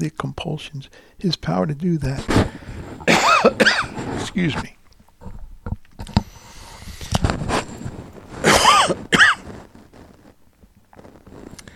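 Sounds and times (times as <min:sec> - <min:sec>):
speech: 0:00.0 - 0:04.8
loud harsh coughing into a microphone: 0:03.0 - 0:04.0, 0:08.4 - 0:09.4.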